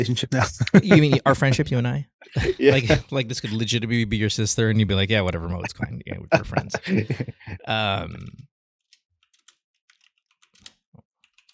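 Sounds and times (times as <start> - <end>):
laughter: 0.0 - 1.4, 2.3 - 8.4
speech: 0.0 - 8.5
keyboard typing: 9.2 - 11.5.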